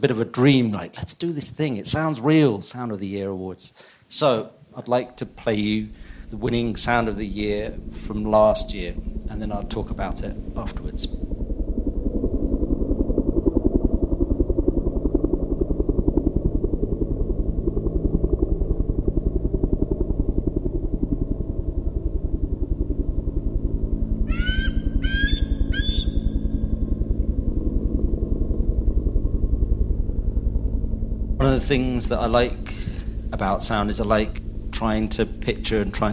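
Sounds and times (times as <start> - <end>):
speech: 0.0 - 11.3, 31.7 - 32.8, 33.4 - 36.1
loud steady low rumble: 5.0 - 36.1
bird call echoing near a hill: 24.2 - 26.7.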